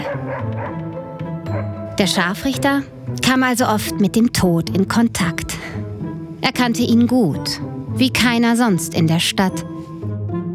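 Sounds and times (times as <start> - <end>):
stray dogs barking and yelping on the streets at night: 0.0 - 1.9
speech: 0.2 - 0.9, 1.6 - 5.8, 6.4 - 9.9.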